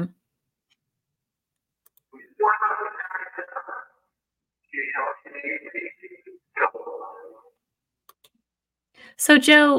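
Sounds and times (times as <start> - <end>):
distorted unintelligible voice-like EVP recording played back with strong echo: 2.2 - 7.6
speech: 4.7 - 7.4, 9.0 - 9.7.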